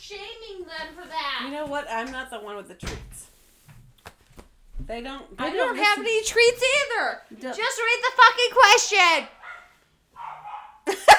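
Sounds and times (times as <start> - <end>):
speech: 0.1 - 3.3, 4.9 - 9.4
dogs excited about going outside barking: 9.2 - 11.0.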